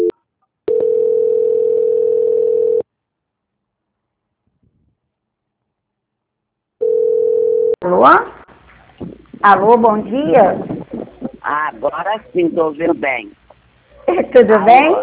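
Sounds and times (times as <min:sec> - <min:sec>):
telephone line tone during a call transfer: 0:00.7 - 0:02.8, 0:06.8 - 0:07.8
speech: 0:07.8 - 0:08.4, 0:09.4 - 0:10.7, 0:11.4 - 0:13.4, 0:14.1 - 0:15.0.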